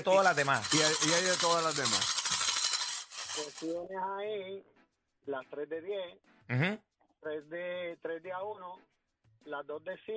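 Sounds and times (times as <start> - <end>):
speech: 0.0 - 2.2, 3.4 - 10.1
coins clinking and jangling together: 0.0 - 3.8.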